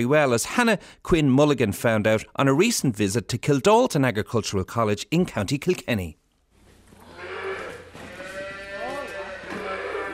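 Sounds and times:
speech: 0.0 - 6.2
calf calling while handled for tagging on a farm: 7.0 - 10.1.

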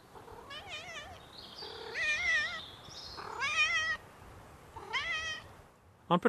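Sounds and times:
domestic cat meowing in a small loft room: 0.3 - 2.6, 3.2 - 4.0, 4.8 - 5.5.

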